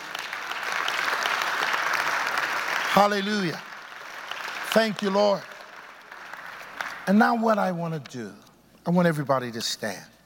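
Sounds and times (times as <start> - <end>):
church audience applauding: 0.0 - 7.5
speech: 3.0 - 3.7, 4.7 - 5.5, 7.1 - 10.1.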